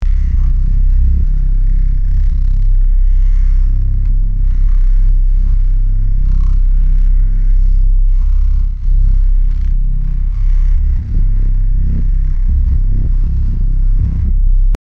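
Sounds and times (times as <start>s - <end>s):
deep bass ribbit: 0.0s - 14.8s.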